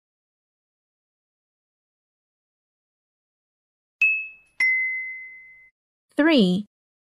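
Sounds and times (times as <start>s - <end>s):
small bell dinging: 4.0s - 5.7s
speech: 6.2s - 6.7s.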